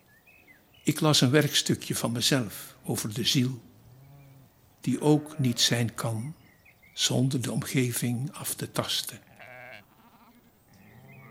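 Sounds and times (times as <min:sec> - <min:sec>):
speech: 0:00.8 - 0:03.7, 0:04.8 - 0:06.4, 0:07.0 - 0:09.3
grazing sheep bleating: 0:05.1 - 0:05.9, 0:09.2 - 0:11.2.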